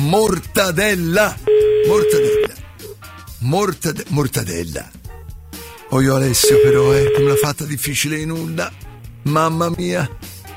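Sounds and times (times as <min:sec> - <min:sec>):
speech: 0:00.1 - 0:02.6, 0:03.4 - 0:05.0, 0:05.9 - 0:10.3
telephone dial tone while placing a call: 0:01.5 - 0:02.5, 0:06.4 - 0:07.5.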